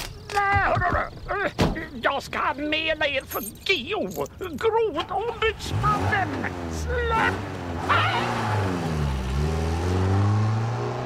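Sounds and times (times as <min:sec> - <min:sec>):
speech: 0:01.4 - 0:08.1
car engine driving off: 0:05.0 - 0:11.0.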